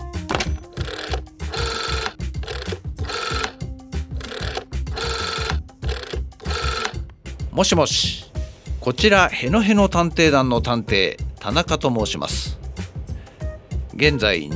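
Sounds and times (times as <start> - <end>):
telephone ringing during outgoing call: 0.4 - 7.0
speech: 7.6 - 12.6, 14.0 - 14.5.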